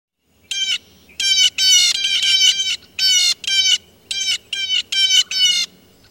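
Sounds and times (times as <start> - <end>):
blue jay giving harsh raspy calls: 0.4 - 6.0.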